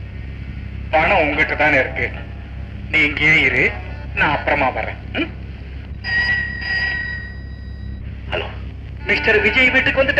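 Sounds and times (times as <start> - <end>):
steady low hum: 0.0 - 10.1
speech: 0.9 - 2.3, 2.9 - 5.4, 8.3 - 10.1
telephone ringing in short electronic bursts: 6.0 - 8.0.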